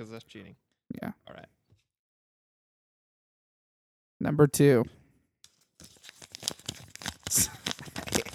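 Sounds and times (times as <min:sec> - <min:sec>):
speech: 0:00.0 - 0:01.6, 0:04.2 - 0:05.0
paper envelope torn open by hand: 0:05.5 - 0:08.3.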